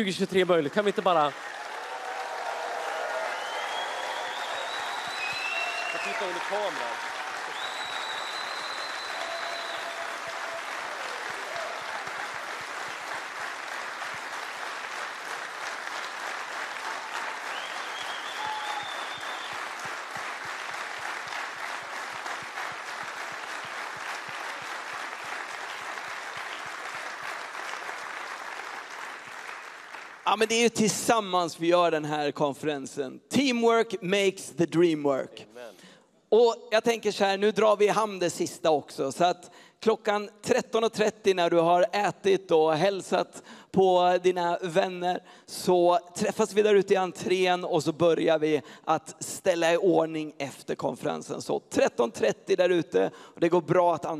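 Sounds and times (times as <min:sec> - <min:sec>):
speech: 0:00.0 - 0:01.6, 0:06.0 - 0:07.1, 0:30.3 - 0:54.1
large crowd applauding at a conference: 0:00.0 - 0:30.7
whistles from the crowd: 0:03.3 - 0:06.5, 0:07.5 - 0:10.1, 0:17.4 - 0:19.7.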